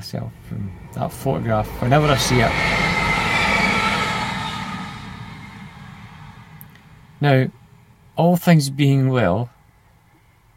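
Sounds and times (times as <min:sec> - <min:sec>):
speech: 0:00.0 - 0:03.0, 0:07.2 - 0:07.6, 0:08.2 - 0:09.6
train rumbling past on tracks: 0:00.0 - 0:08.2
faint high whine of passing train: 0:00.0 - 0:10.4.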